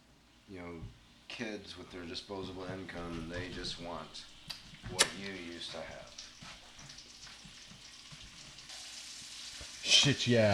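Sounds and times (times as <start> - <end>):
speech: 0.5 - 6.2, 9.9 - 10.5
bacon sizzling and crackling as it fries in a pan: 4.4 - 10.5.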